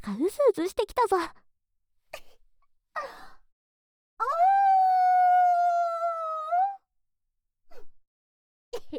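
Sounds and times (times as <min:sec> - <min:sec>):
speech: 0:00.0 - 0:01.4
voice imitating a wolf howling at the moon: 0:04.2 - 0:06.8.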